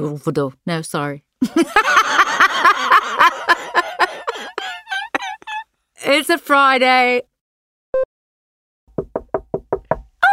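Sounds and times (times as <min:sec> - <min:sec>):
speech: 0:00.0 - 0:02.0, 0:06.1 - 0:07.3
laughter: 0:01.4 - 0:05.6
knee knocking against something: 0:08.9 - 0:10.2.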